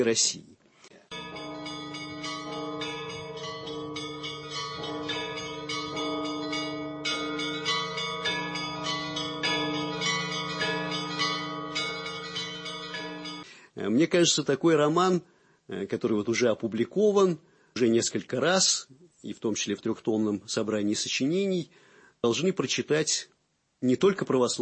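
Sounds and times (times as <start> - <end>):
speech: 0.0 - 0.6, 14.1 - 24.6
church bells pealing: 1.1 - 13.4.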